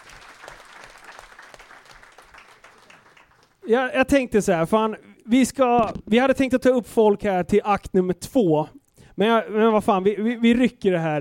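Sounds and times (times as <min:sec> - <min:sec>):
crowd applauding: 0:00.0 - 0:03.6
speech: 0:03.7 - 0:11.2.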